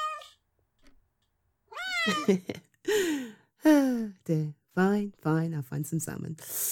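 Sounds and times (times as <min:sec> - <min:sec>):
hungry cat meowing: 0:00.0 - 0:00.4, 0:01.7 - 0:02.3
speech: 0:02.0 - 0:02.7, 0:04.3 - 0:06.7.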